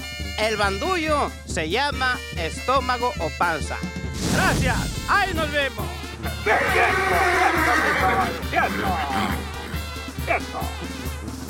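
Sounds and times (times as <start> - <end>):
speech: 0.4 - 9.4, 10.3 - 11.0
horse neighing: 6.5 - 10.8.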